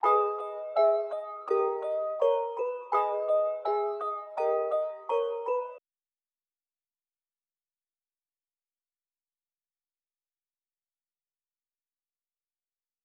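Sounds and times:
plucked synth melody loop in G sharp minor: 0.0 - 5.8.

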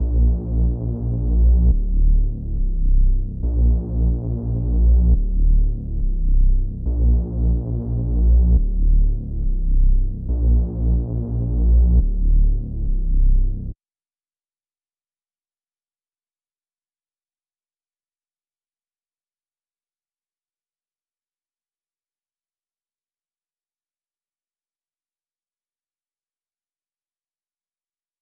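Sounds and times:
bass loop in D minor at 140 BPM: 0.0 - 13.7.

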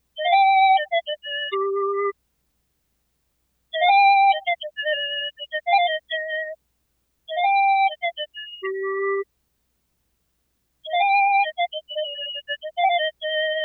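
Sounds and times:
flute melody loop in C minor: 0.2 - 2.1, 3.8 - 6.6, 7.3 - 9.2, 10.9 - 13.6.

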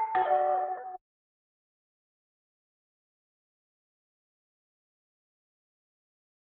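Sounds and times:
148 BPM B minor mallet loop: 0.1 - 1.0.

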